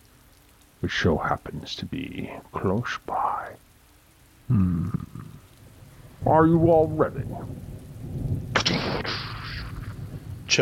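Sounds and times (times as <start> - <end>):
rain falling: 0.0 - 10.6
speech: 0.8 - 3.6, 4.5 - 5.3, 6.2 - 9.2
thunder crack: 6.1 - 10.6.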